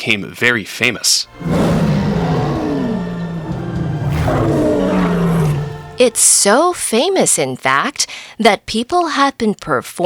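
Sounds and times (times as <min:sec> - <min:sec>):
speech: 0:00.0 - 0:02.0, 0:06.0 - 0:10.0
lion roaring: 0:01.3 - 0:06.1.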